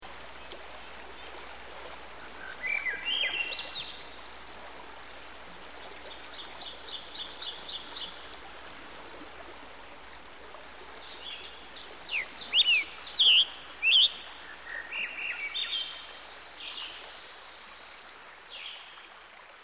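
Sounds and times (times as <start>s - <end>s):
Ovenbird singing: 2.4s - 4.3s, 10.6s - 17.7s.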